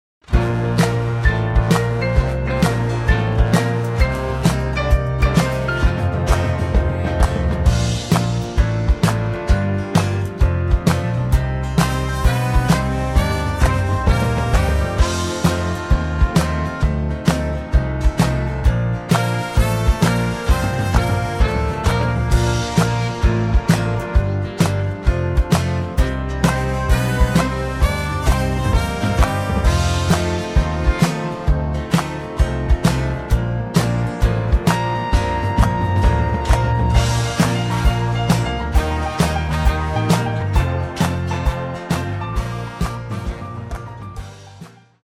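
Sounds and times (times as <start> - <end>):
backing track music without backing vocals: 0.2 - 45.0.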